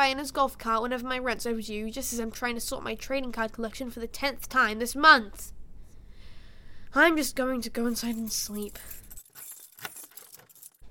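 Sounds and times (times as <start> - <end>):
speech: 0.0 - 5.6, 6.9 - 9.0
ring of keys jangling: 7.9 - 10.8.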